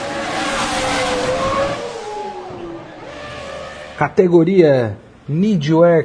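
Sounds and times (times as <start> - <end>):
classic Formula 1 race car engine roar in a PC racing video game: 0.0 - 4.3
speech: 4.0 - 6.0.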